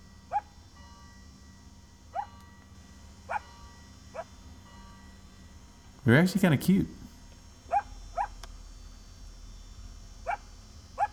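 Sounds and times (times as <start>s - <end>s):
low hum: 0.0s - 11.1s
speech: 6.0s - 7.0s
high-pitched dog-like yips: 7.7s - 8.3s.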